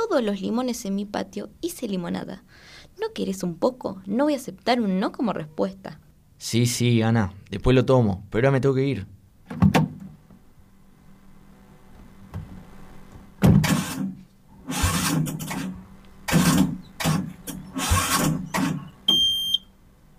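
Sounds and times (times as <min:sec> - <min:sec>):
speech: 0:00.1 - 0:09.8
car engine cranking but failing to start: 0:14.7 - 0:15.7, 0:16.3 - 0:18.9
electronic beep: 0:19.1 - 0:19.7.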